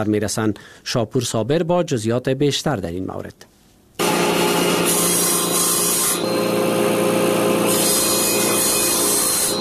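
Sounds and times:
speech: 0.0s - 3.6s
electric saw cutting a wooden board to make a dining table in Herat: 4.0s - 9.5s.

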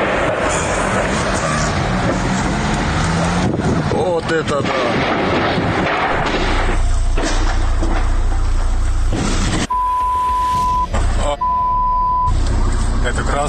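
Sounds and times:
car pulling out with roaring engine: 0.0s - 13.4s
long even electronic beeps: 9.7s - 12.3s.

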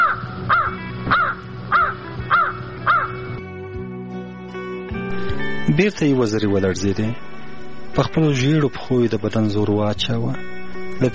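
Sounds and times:
crow cawing: 0.0s - 3.3s
constant tonal hum: 0.0s - 11.1s
speech: 5.8s - 7.3s, 8.0s - 11.1s.

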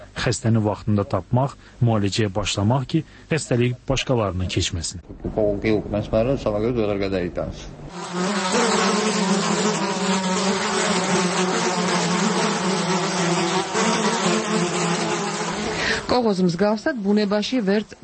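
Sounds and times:
speech: 0.2s - 9.9s, 16.2s - 18.0s
flies buzzing: 7.9s - 16.3s.

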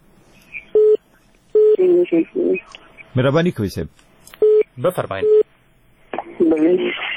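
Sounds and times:
faint hum: 0.0s - 7.1s
telephone tones as a listener's call connects: 0.7s - 1.0s, 1.6s - 2.2s, 4.4s - 5.4s
speech: 1.9s - 4.1s, 4.8s - 5.4s, 6.6s - 7.0s.

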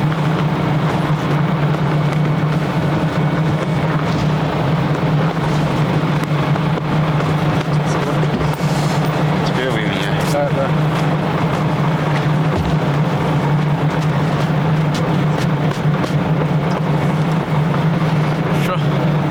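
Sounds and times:
bus engine idling: 0.0s - 19.2s.

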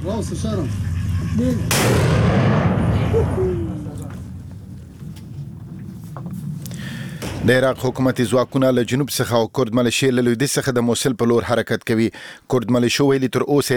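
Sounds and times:
speech: 0.0s - 3.8s, 7.4s - 13.7s
artillery fire blast with rolling rumble on the outskirts of Mosul, Iraq: 1.6s - 9.2s.

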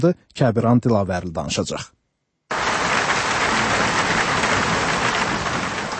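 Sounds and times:
speech: 0.0s - 2.0s
heavy rain falling in the city of Baku: 2.5s - 5.9s.

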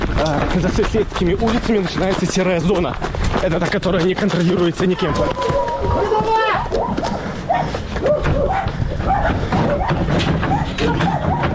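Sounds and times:
speech: 0.2s - 6.4s
dogs barking, yelping and whimpering while being loaded up in a frontline town: 5.1s - 11.5s.

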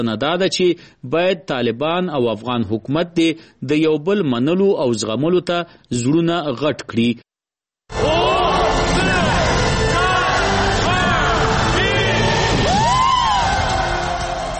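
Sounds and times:
speech: 0.0s - 7.3s
crowd shouting and cheering at a New Year celebration in Beijing: 7.9s - 14.5s.

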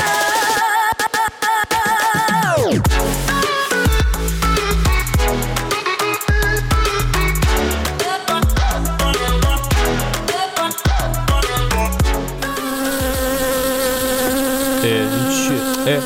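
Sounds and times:
music with a beat: 0.0s - 13.4s
bee buzzing: 12.4s - 16.0s.

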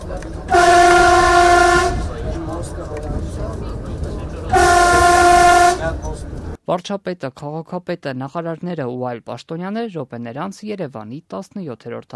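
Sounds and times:
continuous rail rumble of a passenger train: 0.0s - 6.6s
Armenian passenger train horn blasts: 0.4s - 2.1s, 4.5s - 6.0s
speech: 6.7s - 12.1s.

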